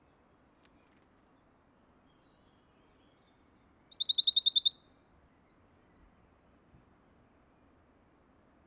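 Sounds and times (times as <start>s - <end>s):
Western Bonelli's warbler singing a rattling trill: 3.9s - 4.8s.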